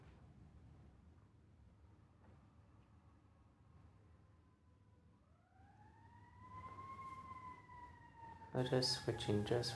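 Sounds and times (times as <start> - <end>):
distant emergency vehicle siren wailing: 4.7 - 9.7
low traffic rumble: 8.5 - 9.7
speech: 8.6 - 9.7.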